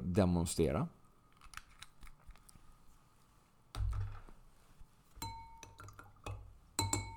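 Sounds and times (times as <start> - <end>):
speech: 0.2 - 1.0
spoon clinking against a glass while stirring citrus-scented oil into water: 5.2 - 5.8, 6.8 - 7.1.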